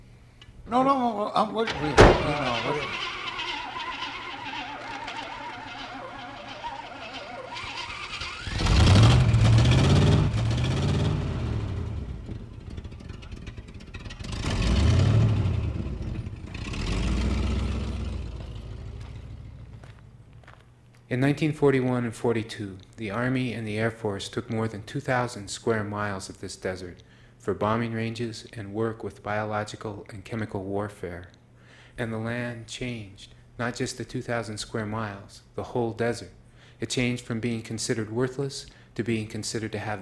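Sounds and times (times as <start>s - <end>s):
speech: 0.7s - 3.2s, 21.1s - 31.4s, 32.0s - 40.0s
truck engine acting up, cranking and revving: 1.6s - 20.6s
truck door slamming shut: 1.7s - 3.3s.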